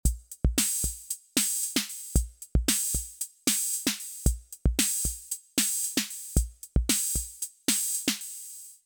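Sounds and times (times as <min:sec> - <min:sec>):
dry drum machine beat: 0:00.0 - 0:08.8.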